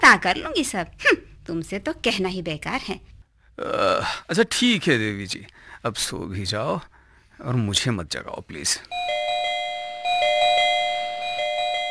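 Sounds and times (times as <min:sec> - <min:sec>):
speech: 0:00.1 - 0:09.2
electronic doorbell ringing with bright sustained tone and chiming pulses: 0:08.9 - 0:11.8.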